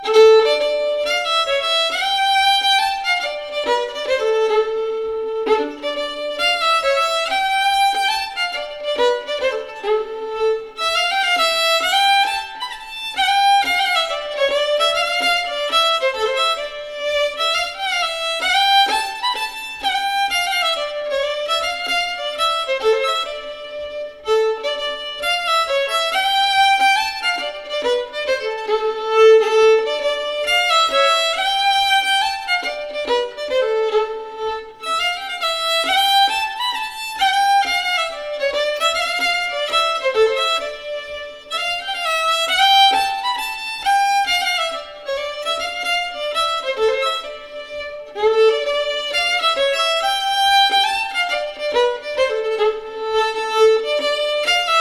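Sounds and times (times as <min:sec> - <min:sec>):
folk dance tune: 0:00.0 - 0:54.7.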